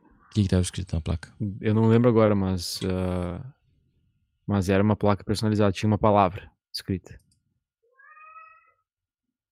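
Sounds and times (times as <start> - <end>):
speech: 0.3 - 3.6, 4.5 - 7.2
cat meowing: 7.8 - 8.9.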